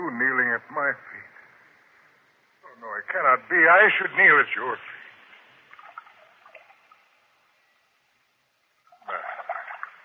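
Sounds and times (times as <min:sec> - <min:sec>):
speech: 0:00.6 - 0:01.3, 0:03.1 - 0:05.0
water splashing as feet are washed: 0:05.2 - 0:07.2, 0:08.9 - 0:10.0.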